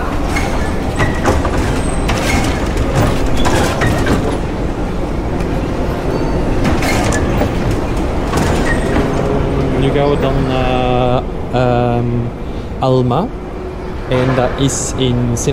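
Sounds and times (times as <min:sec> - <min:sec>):
metro train rumbling along the rails: 0:00.0 - 0:15.5
metallic clicks and squeals of metro train: 0:00.2 - 0:04.4, 0:06.0 - 0:09.4
speech: 0:12.8 - 0:13.4, 0:14.1 - 0:15.5.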